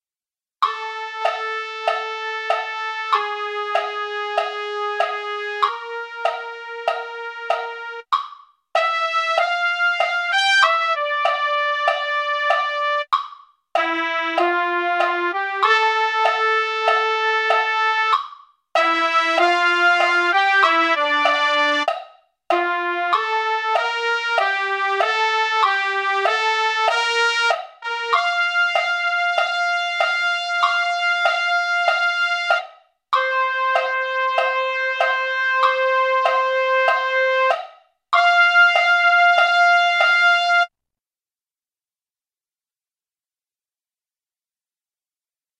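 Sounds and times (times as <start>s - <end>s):
MIDI trumpet: 0.8s - 8.1s, 8.8s - 13.1s, 13.8s - 18.2s, 18.8s - 21.9s, 22.5s - 32.6s, 33.2s - 37.6s, 38.2s - 40.7s.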